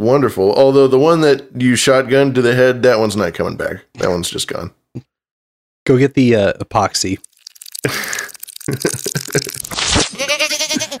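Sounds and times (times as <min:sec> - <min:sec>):
speech: 0:00.0 - 0:05.1, 0:05.9 - 0:09.6
baby goat bleating: 0:10.1 - 0:10.9.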